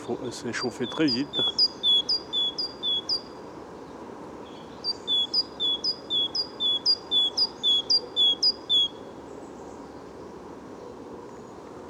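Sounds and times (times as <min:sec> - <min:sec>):
bird perched high in a tree singing a monotone song in a forest: 0:00.0 - 0:03.3, 0:04.4 - 0:10.0
quiet forest background: 0:00.0 - 0:11.8
speech: 0:00.1 - 0:01.8.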